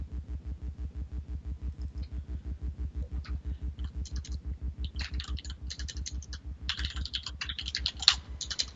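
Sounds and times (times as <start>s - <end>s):
steady low rhythmic hum: 0.0s - 8.7s
rapid frantic typing on a computer keyboard: 3.8s - 8.7s.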